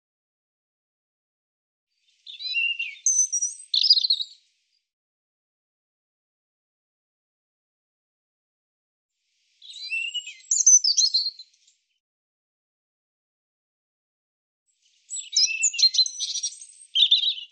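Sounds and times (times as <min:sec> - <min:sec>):
European robin singing: 0:02.1 - 0:04.4, 0:09.6 - 0:11.7, 0:15.0 - 0:17.4.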